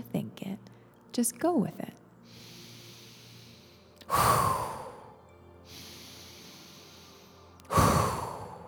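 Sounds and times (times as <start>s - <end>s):
speech: 1.2s - 2.0s
quieter inhale through the nose: 2.2s - 8.6s
forceful breaths pushed out through the mouth: 2.3s - 8.6s.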